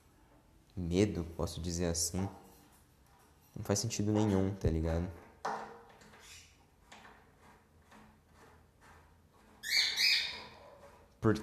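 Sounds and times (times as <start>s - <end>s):
speech: 0.8s - 2.4s, 3.6s - 5.2s, 11.2s - 11.4s
small pet bird chirping and warbling: 9.6s - 10.5s.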